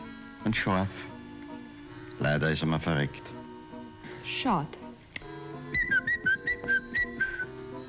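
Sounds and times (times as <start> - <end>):
speech: 0.5 - 1.1, 2.2 - 3.4, 4.2 - 4.8
human whistle call used to summon a Rehpinscher dog: 5.7 - 7.6.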